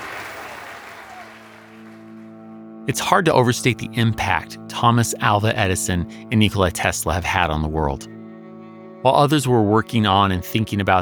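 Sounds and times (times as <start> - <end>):
audience roaring with applause: 0.0 - 2.5
speech: 2.9 - 8.2, 9.0 - 11.0.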